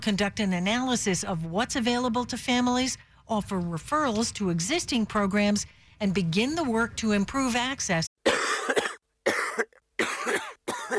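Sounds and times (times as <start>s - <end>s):
speech: 0.0s - 8.1s
person coughing harshly: 8.2s - 10.9s.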